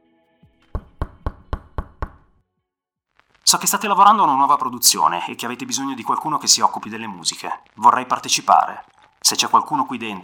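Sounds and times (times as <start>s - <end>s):
firm knocking on an office door: 0.6s - 2.3s
speech: 3.5s - 10.2s.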